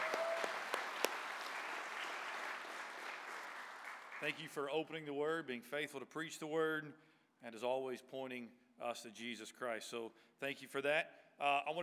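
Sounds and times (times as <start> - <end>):
church audience clapping to thank a guest preacher: 0.0 - 4.6
speech: 4.2 - 11.8.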